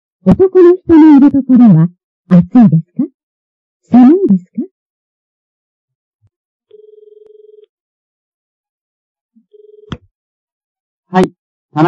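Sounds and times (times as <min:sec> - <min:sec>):
speech: 0:00.2 - 0:03.1, 0:03.9 - 0:04.6, 0:11.1 - 0:11.8
telephone ringing with a warbling electronic trill: 0:06.7 - 0:07.7, 0:09.4 - 0:10.0.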